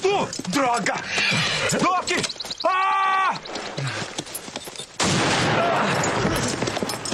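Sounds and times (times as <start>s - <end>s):
speech: 0.1s - 3.6s
gunfire in a dubbed film scene: 5.0s - 6.5s.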